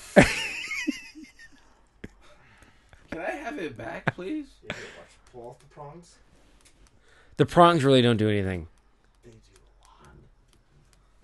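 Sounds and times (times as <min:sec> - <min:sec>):
speech: 0:03.6 - 0:06.3, 0:07.4 - 0:09.5
typing on a keyboard: 0:08.7 - 0:11.0.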